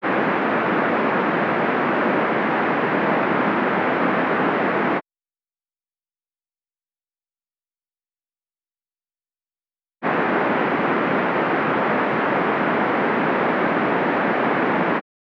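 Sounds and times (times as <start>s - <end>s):
pink noise band-limited to 200 to 2000 Hz: 0.0s - 5.0s, 10.0s - 15.0s.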